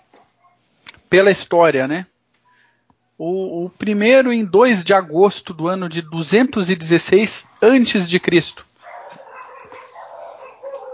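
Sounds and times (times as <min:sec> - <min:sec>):
pack of dogs barking outdoors: 0:00.1 - 0:00.7, 0:07.2 - 0:08.2, 0:08.8 - 0:10.9
speech: 0:01.1 - 0:02.1, 0:03.2 - 0:08.7.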